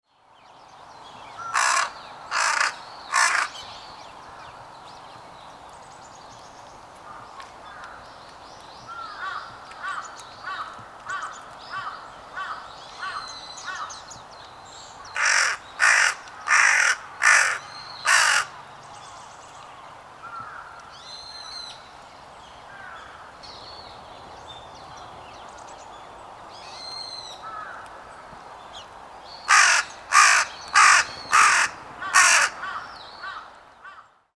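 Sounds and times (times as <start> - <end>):
carrion crow calling in Yokohama Kanagawa: 1.4 - 3.7, 8.9 - 13.9, 15.1 - 18.6, 20.2 - 20.8, 22.7 - 23.4, 27.1 - 28.1, 29.4 - 34.2.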